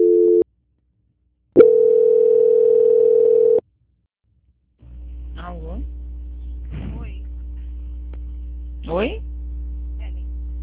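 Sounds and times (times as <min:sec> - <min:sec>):
dual tone on a VoIP phone line during call transfer: 0:00.0 - 0:00.4, 0:01.6 - 0:03.6.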